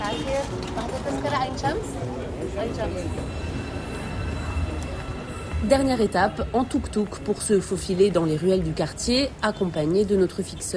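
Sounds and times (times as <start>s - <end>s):
metro train in motion rumbling: 0.0s - 10.6s
people's voices and chatter: 0.0s - 10.7s
speech: 1.4s - 1.9s, 2.6s - 3.4s, 5.6s - 10.7s.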